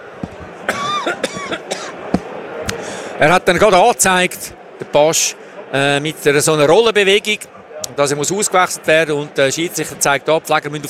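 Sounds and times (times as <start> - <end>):
low murmur: 0.0 - 10.8
dry coughs: 0.6 - 2.0
speech: 1.0 - 1.6, 3.2 - 10.8.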